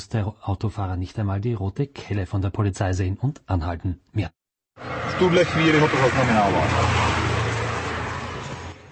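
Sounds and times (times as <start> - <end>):
speech: 0.0 - 7.2
red Renault car driving past: 4.8 - 8.8.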